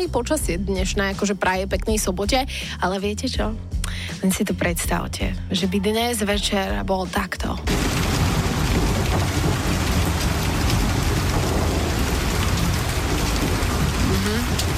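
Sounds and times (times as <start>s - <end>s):
speech: 0.0s - 8.2s
heavy rain: 7.7s - 14.7s
thunder rumbling: 7.7s - 14.7s.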